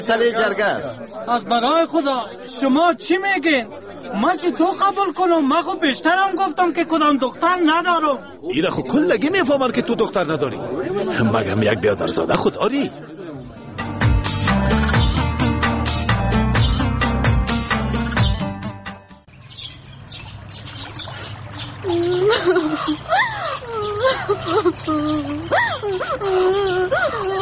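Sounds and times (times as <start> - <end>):
speech: 0.0 - 13.2, 22.1 - 23.2, 24.0 - 27.4
laughter: 8.8 - 13.6, 21.8 - 27.4
busy music: 13.5 - 19.3
girl sobbing and wailing: 21.9 - 27.4.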